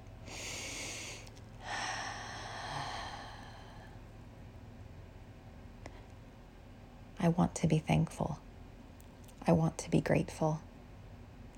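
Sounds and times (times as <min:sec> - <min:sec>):
deep breath: 0:00.2 - 0:04.0
speech: 0:07.2 - 0:08.5, 0:09.5 - 0:10.7.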